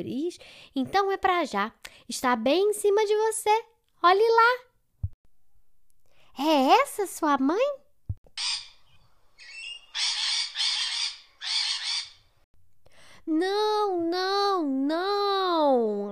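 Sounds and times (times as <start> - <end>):
speech: 0.0 - 4.7, 6.4 - 7.8, 13.3 - 16.1
macaw squawking and screeching: 8.4 - 12.3.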